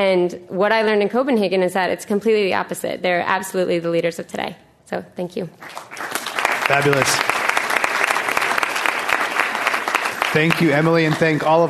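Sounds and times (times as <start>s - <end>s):
speech: 0.0s - 7.3s, 10.3s - 11.6s
crowd applauding: 5.6s - 11.6s.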